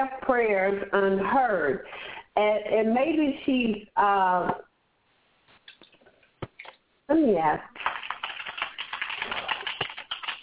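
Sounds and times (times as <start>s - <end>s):
speech: 0.0s - 4.7s, 7.1s - 7.9s
typing on a computer keyboard: 7.8s - 10.4s.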